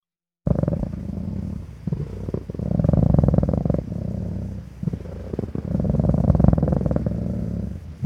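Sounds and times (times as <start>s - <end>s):
animal purring in a low rumbling rhythm: 0.4s - 8.0s.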